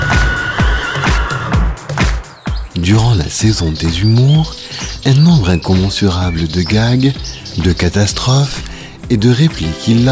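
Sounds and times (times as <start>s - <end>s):
horse on a ranch whinnying: 0.0s - 1.8s
speech: 2.9s - 10.0s.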